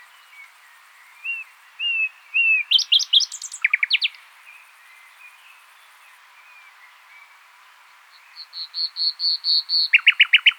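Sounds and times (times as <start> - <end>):
common nightingale song, Luscinia megarhynchos: 0.0 - 10.5.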